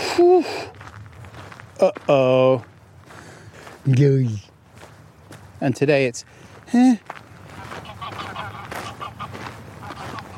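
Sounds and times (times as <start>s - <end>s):
speech: 0.2s - 0.8s, 1.8s - 2.7s, 3.8s - 4.5s, 5.6s - 7.2s
loud nasal goose honk: 7.5s - 10.3s.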